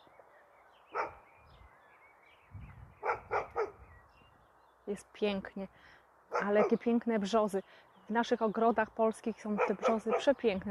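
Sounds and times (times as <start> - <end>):
faint birdsong: 0.0 - 10.6
neighbour's dog barking: 0.9 - 1.2, 3.0 - 3.8, 6.3 - 6.8, 9.6 - 10.4
speech: 4.9 - 10.6.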